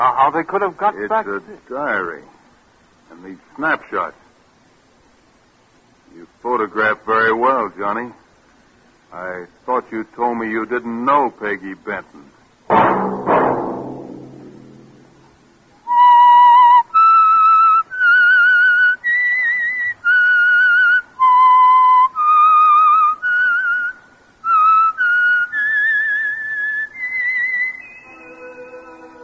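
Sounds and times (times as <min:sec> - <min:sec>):
speech: 0:00.0 - 0:02.4, 0:03.1 - 0:04.2, 0:06.1 - 0:08.2, 0:09.1 - 0:13.3
solo whistler performing a radio programme theme signal: 0:15.9 - 0:29.2.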